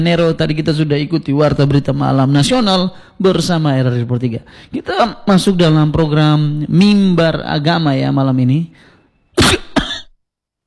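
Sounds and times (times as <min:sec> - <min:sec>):
speech: 0:00.0 - 0:09.7
person coughing: 0:09.4 - 0:10.2.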